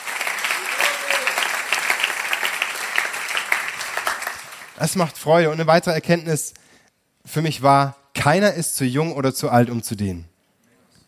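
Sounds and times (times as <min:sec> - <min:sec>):
crowd applause: 0:00.0 - 0:04.8
speech: 0:04.8 - 0:06.6, 0:07.3 - 0:10.3.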